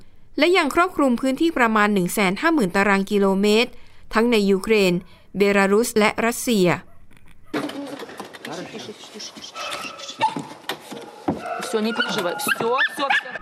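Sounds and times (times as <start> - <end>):
steady noise: 0.0 - 13.3
speech: 0.4 - 6.9, 11.7 - 13.3
several dogs barking and whimpering at the Chernobyl nuclear power plant: 6.9 - 13.3.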